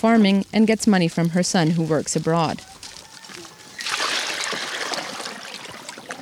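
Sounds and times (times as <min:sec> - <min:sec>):
speech: 0:00.0 - 0:02.8
water sloshing and splashing as someone moves through a river: 0:00.0 - 0:06.2
murmur of voices: 0:01.9 - 0:03.9.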